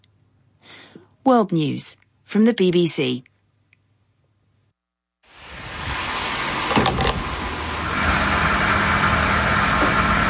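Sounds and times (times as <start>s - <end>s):
speech: 1.2s - 3.3s
diesel being pumped into a vehicle at a fuel station: 5.4s - 10.2s.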